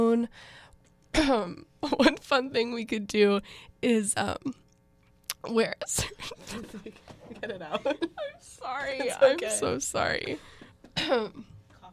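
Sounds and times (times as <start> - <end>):
speech: 0.0 - 0.6, 1.2 - 4.6, 5.4 - 11.5
harsh raspy throat-clearing cough: 11.0 - 11.5.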